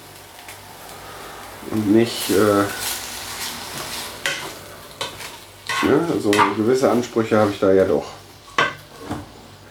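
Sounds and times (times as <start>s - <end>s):
frozen meat sizzling in a hot thin high-sided pan: 0.0s - 9.0s
speech: 1.6s - 3.0s, 5.9s - 8.2s
utensil scraping and stirring meat in a pan: 2.2s - 7.7s.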